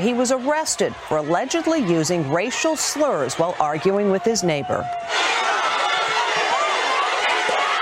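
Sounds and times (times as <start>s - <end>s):
speech: 0.0s - 5.6s
dense agitated crowd jeering and shouting: 0.0s - 7.8s.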